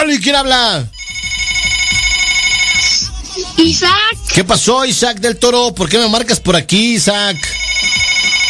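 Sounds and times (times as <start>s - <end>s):
speech: 0.1s - 0.9s, 3.6s - 7.5s
electronic telephone ringtone for an incoming call: 0.9s - 3.1s, 7.3s - 8.4s.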